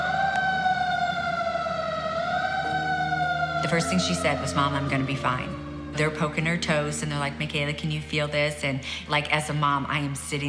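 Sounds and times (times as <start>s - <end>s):
approaching emergency vehicle siren wailing: 0.0s - 8.0s
low engine rumble: 0.0s - 9.5s
speech: 3.7s - 10.4s.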